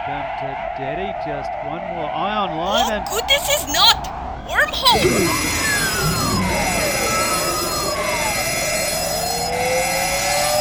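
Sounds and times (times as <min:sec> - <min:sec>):
speech: 0:00.1 - 0:07.4
alarm blaring with wailing tones: 0:02.7 - 0:10.5
dense buzzing electronic background: 0:02.7 - 0:10.5.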